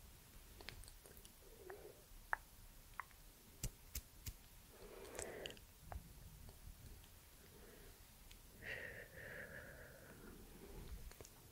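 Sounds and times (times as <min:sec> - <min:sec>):
faint low hiss: 0:00.0 - 0:11.5
soft wet mouth smacks and breathy puffs: 0:00.6 - 0:03.2.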